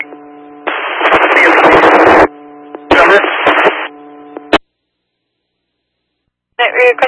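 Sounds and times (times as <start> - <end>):
loud radio static crackling: 0.0 - 4.6, 6.6 - 7.0
steady hum: 0.0 - 7.0
speech: 6.8 - 7.0.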